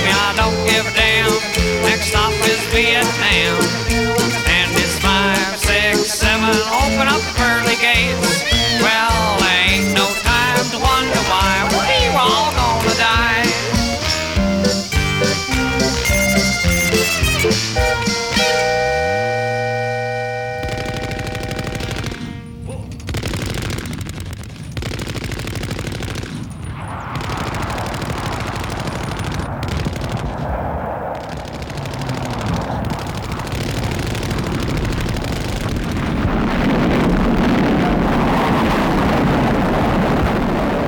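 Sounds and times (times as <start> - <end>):
booming explosions with roaring noise: 0.0 - 18.9, 20.5 - 40.8
loud dense bursts of rapid crackling gunfire: 0.0 - 18.9, 20.4 - 30.4, 31.2 - 36.8
laughter: 4.3 - 14.6
final sustained musical chord of a song: 17.8 - 21.6.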